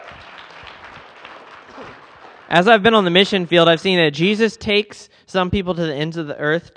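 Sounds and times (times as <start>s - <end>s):
audience applauding: 0.0s - 3.2s
speech: 2.5s - 6.7s.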